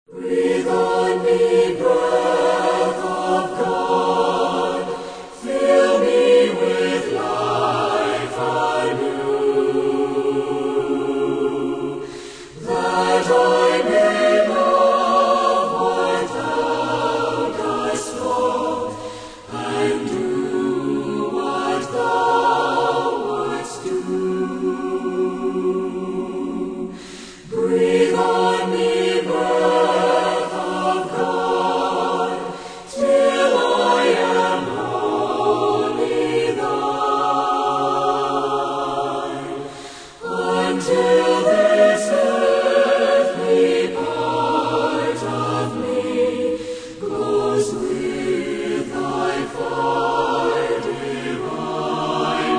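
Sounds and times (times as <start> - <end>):
choir singing: 0.0 - 52.5.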